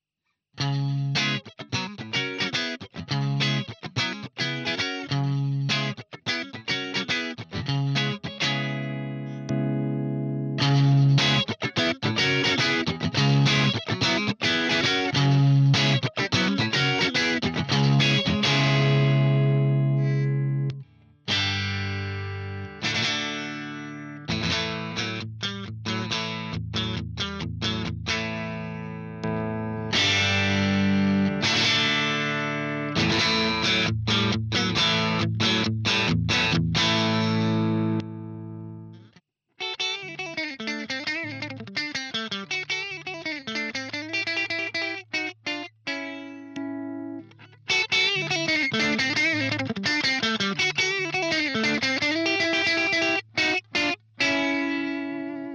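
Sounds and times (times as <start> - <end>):
Telecaster through JCM2000 TSL clean channel: 0.6 - 55.5.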